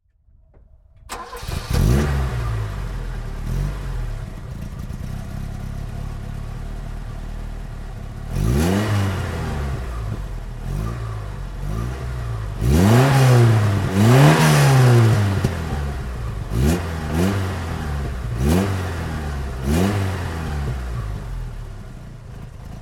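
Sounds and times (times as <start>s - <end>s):
1980 Lancia Montecarlo engine: 1.0s - 22.8s.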